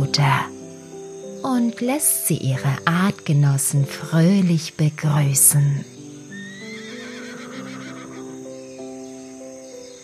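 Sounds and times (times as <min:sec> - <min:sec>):
speech: 0:00.1 - 0:00.5, 0:01.4 - 0:05.9
foal neighing while running toward other foals: 0:06.3 - 0:08.4.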